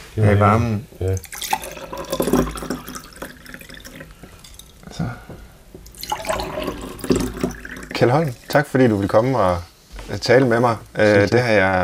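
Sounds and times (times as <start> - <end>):
speech: 0.2 - 2.6, 8.0 - 11.8
water pouring into a glass: 1.2 - 5.0, 5.8 - 9.2.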